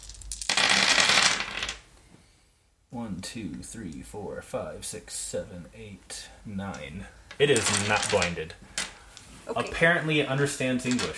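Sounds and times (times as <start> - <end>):
handful of dice clattering and rattling: 0.0 - 1.8, 7.4 - 9.0, 10.8 - 11.1
speech: 2.9 - 8.8, 9.5 - 11.1.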